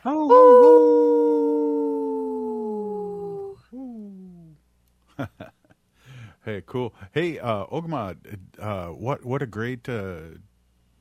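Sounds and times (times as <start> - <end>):
speech: 0.0 - 0.4, 6.5 - 10.5
wolf howling: 0.3 - 3.6.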